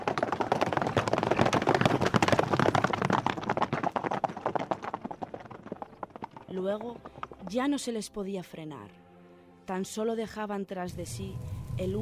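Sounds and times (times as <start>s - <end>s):
horses ridden by nomadic hordes galloping: 0.0s - 7.8s
speech: 6.6s - 9.0s, 9.7s - 12.0s.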